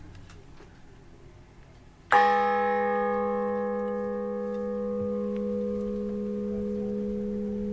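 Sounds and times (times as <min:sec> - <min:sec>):
large 535 kg church bell struck and ringing: 0:02.1 - 0:07.7.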